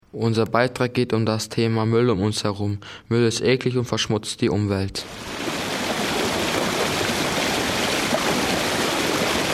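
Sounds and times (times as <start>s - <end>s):
speech: 0.1s - 5.5s
waterfall roaring: 5.0s - 9.5s.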